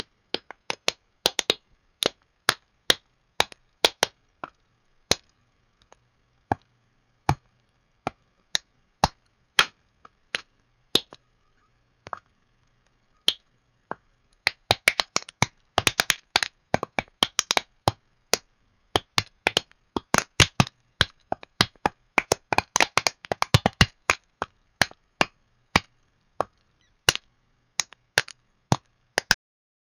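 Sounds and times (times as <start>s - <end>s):
popcorn popping: 0.0s - 11.3s, 12.0s - 29.4s.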